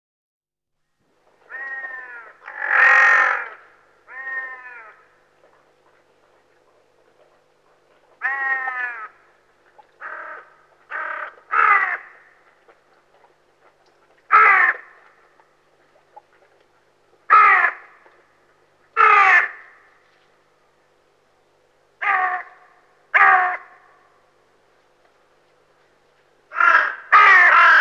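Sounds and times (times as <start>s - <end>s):
hooded crow: 1.5s - 5.1s, 8.2s - 9.2s, 10.0s - 12.4s, 14.3s - 15.0s, 17.3s - 18.0s, 19.0s - 19.9s, 22.0s - 24.0s, 26.5s - 27.7s.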